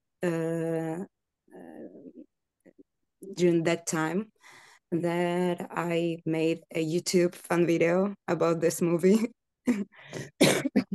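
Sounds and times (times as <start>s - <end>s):
speech: 0.2s - 1.1s, 3.2s - 10.7s
person coughing: 10.2s - 10.9s.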